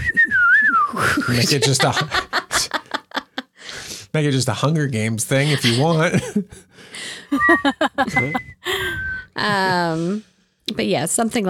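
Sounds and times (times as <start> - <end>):
person whistling in imitation of a bird call: 0.0 - 1.1, 7.3 - 9.4
people chuckling: 1.0 - 3.5, 5.3 - 9.9
speech: 1.2 - 2.2, 4.2 - 6.7, 7.3 - 8.5, 9.4 - 11.4.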